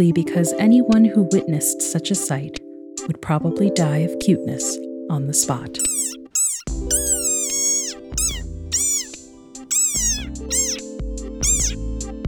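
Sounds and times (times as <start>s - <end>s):
speech: 0.0s - 6.0s
desert rain frog squeaking scream: 5.8s - 10.8s, 11.4s - 11.8s.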